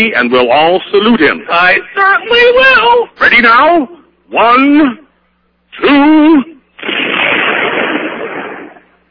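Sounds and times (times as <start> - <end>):
speech: 0.0 - 5.0, 5.8 - 7.2
cannon blast: 6.8 - 9.0.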